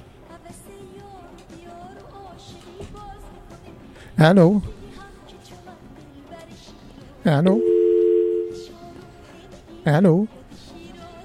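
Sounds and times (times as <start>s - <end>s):
speech: 4.2s - 4.8s, 7.2s - 7.7s, 9.8s - 10.4s
steady electronic telephone busy tone after a dropped call: 7.3s - 8.7s.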